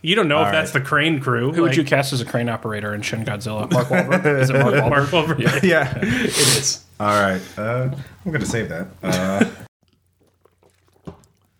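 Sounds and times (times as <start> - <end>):
speech: 0.0 - 9.6
laughter: 3.6 - 6.6, 9.0 - 9.7
person slurping and gulping a beverage: 9.2 - 11.5
faint mouth noises: 9.8 - 11.5.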